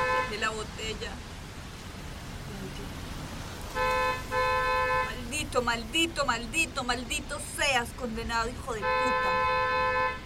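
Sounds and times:
car horn honking in buzzy blasts: 0.0 - 0.4, 3.8 - 5.2, 8.7 - 10.2
speech: 0.5 - 1.4, 2.6 - 3.1, 5.5 - 9.6.

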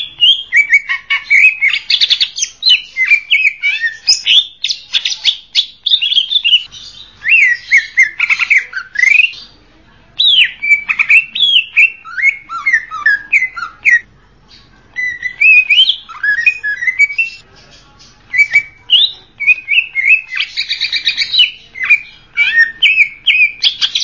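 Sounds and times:
leafbird song: 0.0 - 9.6, 10.2 - 24.0.

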